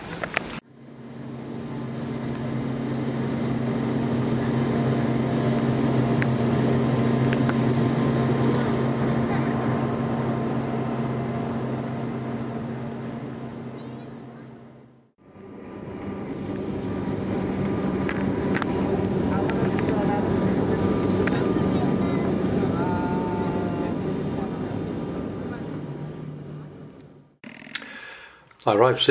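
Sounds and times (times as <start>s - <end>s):
small turboprop plane engine droning in flight: 0.0s - 27.4s
speech: 28.6s - 29.0s.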